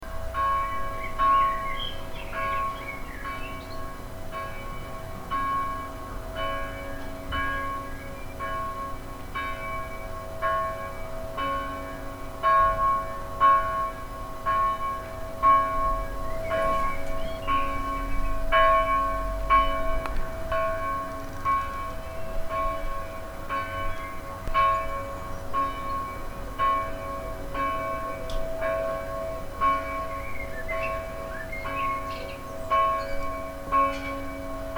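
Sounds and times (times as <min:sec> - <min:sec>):
church bells ringing: 0:00.0 - 0:34.7
birds: 0:00.6 - 0:04.8, 0:16.1 - 0:18.5, 0:21.2 - 0:26.2, 0:29.7 - 0:34.2.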